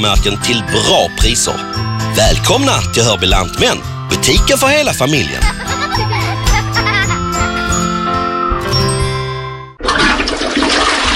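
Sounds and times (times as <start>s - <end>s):
speech: 0.0s - 5.7s
bright chiming musical jingle of tinkling tones: 0.4s - 9.8s
laughter: 5.2s - 7.6s
blocked toilet flushing in a home: 9.8s - 11.1s.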